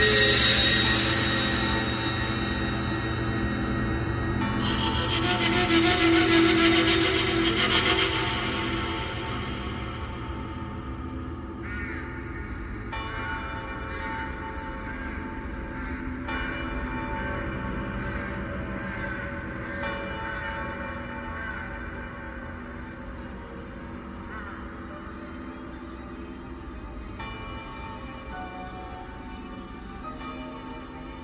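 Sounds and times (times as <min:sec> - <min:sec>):
wedding bells pealing across a desert: 0:00.0 - 0:31.2.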